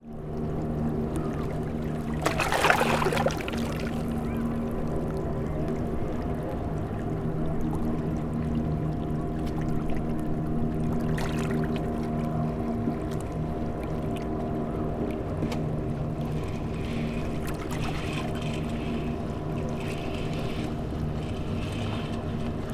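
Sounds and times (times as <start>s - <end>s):
small motor boats passing at a harbor entrance: 0.0s - 22.7s
small waves at a harbor entrance: 0.0s - 22.7s
sail being pulled down on a passing boat: 16.2s - 22.7s.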